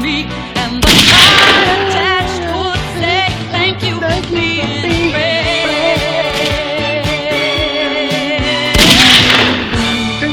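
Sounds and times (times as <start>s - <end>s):
sustained music: 0.0s - 10.3s
gunshot sound effects: 0.8s - 1.9s, 8.7s - 10.0s
bigger, brighter blast: 0.8s - 2.0s, 8.7s - 10.0s.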